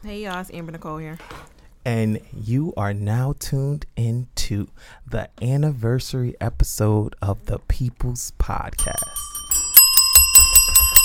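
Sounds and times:
speech: 0.0 - 9.3
bells ringing: 8.8 - 11.0.

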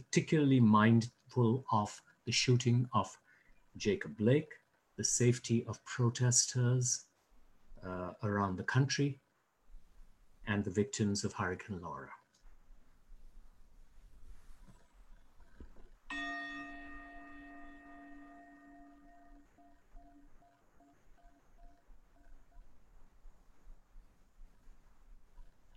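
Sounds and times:
speech: 0.1 - 3.2, 3.8 - 7.1, 7.8 - 9.2, 10.5 - 12.2
meditation chime ringing: 16.1 - 23.6.

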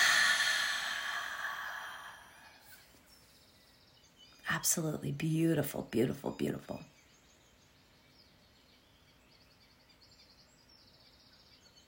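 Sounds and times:
slow deep exhale during a guided breathing exercise: 0.0 - 2.9
speech: 4.5 - 6.9.

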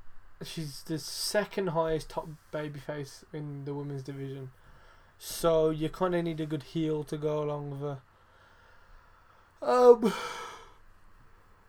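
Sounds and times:
speech: 0.4 - 4.6, 5.2 - 8.1, 9.6 - 10.4
person yawning: 9.6 - 10.8.

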